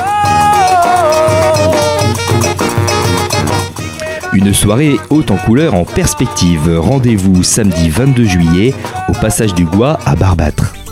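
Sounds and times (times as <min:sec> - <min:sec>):
steady percussion: 0:00.0 - 0:10.9
bright brass fanfare horn melodies: 0:00.2 - 0:04.0
speech: 0:04.4 - 0:10.8.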